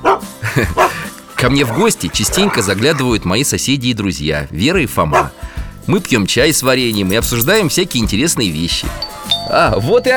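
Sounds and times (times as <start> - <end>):
dog barking in greeting: 0.0 - 3.2, 5.1 - 5.4
speech: 0.6 - 10.1.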